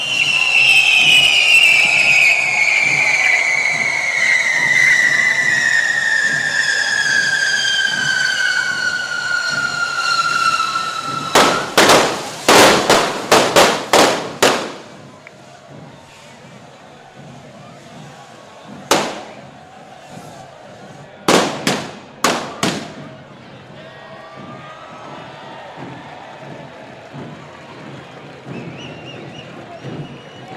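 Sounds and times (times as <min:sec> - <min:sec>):
firecrackers going off at a crowded street festival fire dragon lighting: 0:00.0 - 0:23.2.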